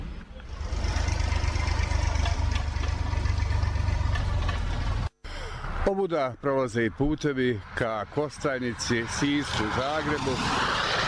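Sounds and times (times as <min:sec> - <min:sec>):
tractor engine idling on country paths at harvest time: 0:00.3 - 0:05.1
speech: 0:05.9 - 0:11.0.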